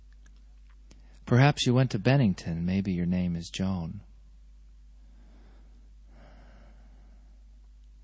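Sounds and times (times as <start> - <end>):
low steady hum: 0.0 - 8.0
soft breathing: 0.9 - 1.3, 4.9 - 7.8
speech: 1.3 - 4.1
woman's sharp breathy gasp: 5.2 - 7.4.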